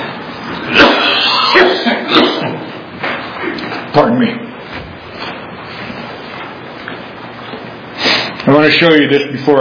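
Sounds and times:
person coughing harshly: 0:00.7 - 0:02.7
speech: 0:03.9 - 0:04.5, 0:08.6 - 0:09.5.

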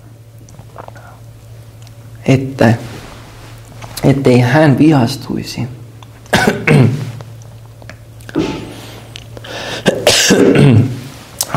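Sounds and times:
faint steady hum: 0:00.0 - 0:11.5
speech: 0:02.2 - 0:02.9, 0:04.0 - 0:07.0
person coughing in loud harsh bursts: 0:06.3 - 0:07.1, 0:08.3 - 0:08.8, 0:09.6 - 0:11.0.

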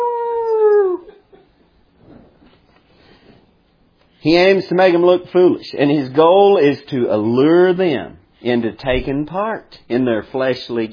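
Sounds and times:
human voice imitating a wolf howl: 0:00.0 - 0:01.2
speech: 0:04.2 - 0:10.9.

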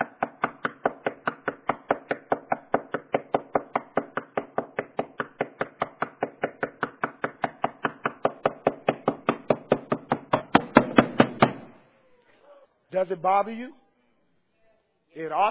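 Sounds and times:
sharp knocks: 0:00.0 - 0:11.8
speech: 0:13.0 - 0:13.8, 0:15.2 - 0:15.4.

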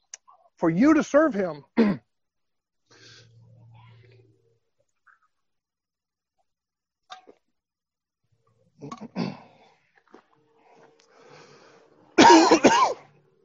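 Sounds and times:
speech: 0:00.6 - 0:02.0
preacher with an irritated throat clearing his throat: 0:01.8 - 0:02.1, 0:08.8 - 0:09.6
preacher with an irritated throat coughing harshly: 0:01.8 - 0:02.1, 0:08.9 - 0:09.6, 0:12.2 - 0:13.1.

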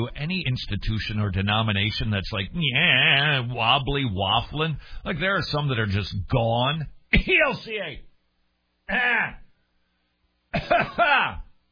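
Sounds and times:
speech: 0:00.0 - 0:08.1, 0:08.9 - 0:09.4, 0:10.5 - 0:11.4
person coughing to clear a tickle in the throat: 0:10.5 - 0:11.5.

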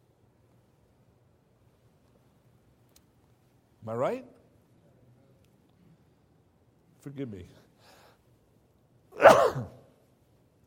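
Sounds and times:
speech: 0:03.9 - 0:04.4, 0:07.0 - 0:07.6, 0:09.2 - 0:09.8
sneeze: 0:09.1 - 0:10.0.

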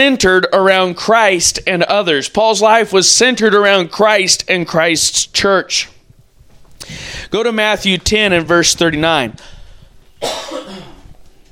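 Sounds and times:
speech: 0:00.0 - 0:05.9, 0:06.8 - 0:09.6, 0:10.2 - 0:10.8
raspy breath: 0:06.8 - 0:07.3
ill man coughing: 0:10.2 - 0:11.1.

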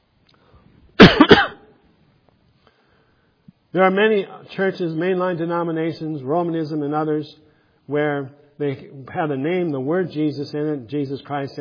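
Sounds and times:
coughing and throat clearing: 0:01.0 - 0:01.8
speech: 0:03.8 - 0:11.5.

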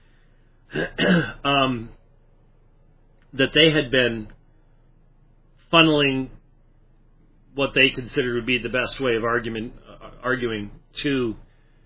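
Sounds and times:
person clearing throat: 0:00.7 - 0:01.8
speech: 0:00.7 - 0:02.0, 0:03.3 - 0:04.4, 0:05.7 - 0:06.4, 0:07.6 - 0:11.4.

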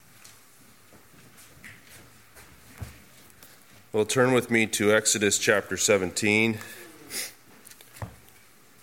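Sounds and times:
speech: 0:03.9 - 0:06.8
sick person sniffling through the nose: 0:06.6 - 0:07.4.

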